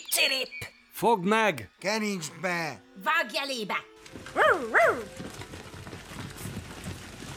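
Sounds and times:
speech: 0.2 - 5.4
chased dog giving high-pitched yelping barks: 4.4 - 5.1.

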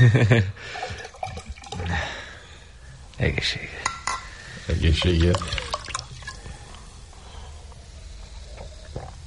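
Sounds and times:
speech: 0.0 - 1.0, 3.2 - 4.0, 4.7 - 5.7
new wine poured into a wine glass: 0.7 - 2.2, 4.6 - 6.8.

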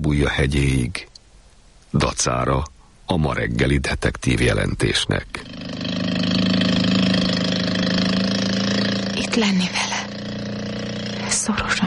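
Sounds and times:
speech: 0.1 - 1.1, 1.9 - 5.8, 9.4 - 9.9, 11.5 - 11.8
small motorboat engine droning while speeding across an open lagoon: 5.4 - 11.4.

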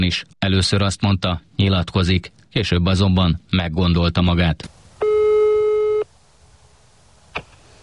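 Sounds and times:
speech: 0.0 - 4.8
electronic telephone ringing tone during call: 5.0 - 6.1.

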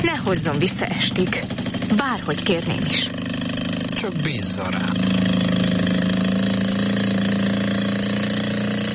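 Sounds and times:
speech: 0.0 - 3.2, 4.0 - 5.3
motorboat engine roaring as boat speeds off: 0.0 - 8.9.

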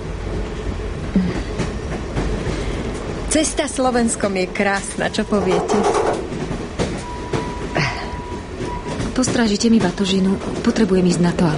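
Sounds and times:
passenger train rolling along the rails through Slovakia: 0.0 - 11.5
speech: 1.2 - 1.4, 3.3 - 6.2, 9.2 - 11.5
train wheels clacking over track joints: 3.0 - 11.5.

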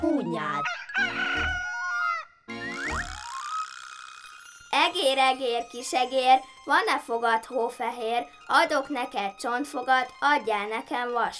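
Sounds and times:
rooster crowing: 0.5 - 2.3
speech: 4.8 - 11.3.

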